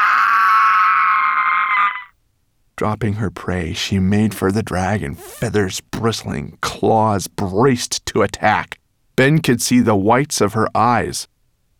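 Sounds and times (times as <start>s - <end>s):
giant bird's furious screech: 0.0s - 2.1s
speech: 2.8s - 11.3s.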